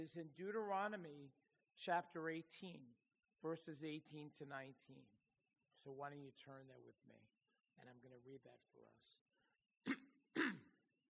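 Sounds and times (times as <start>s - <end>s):
speech: 0.0s - 5.2s, 5.8s - 10.0s
man with a chronic cough coughing: 9.9s - 10.7s.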